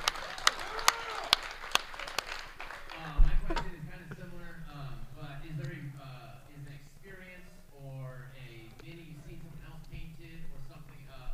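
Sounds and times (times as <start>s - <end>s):
audience clapping together in a slow steady rhythm: 0.0s - 3.8s
laughter: 2.9s - 6.2s.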